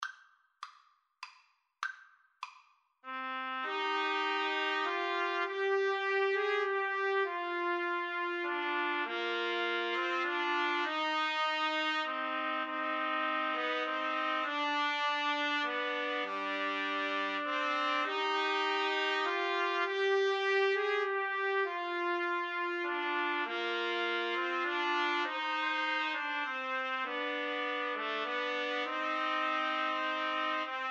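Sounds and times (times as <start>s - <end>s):
trumpet trio playing: 3.1s - 30.8s.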